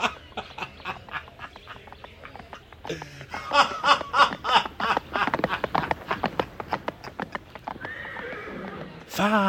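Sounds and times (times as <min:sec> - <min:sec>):
laughter: 0:00.0 - 0:06.7
horse hooves clip-clopping: 0:00.0 - 0:09.4
horse whinnying: 0:07.4 - 0:09.0.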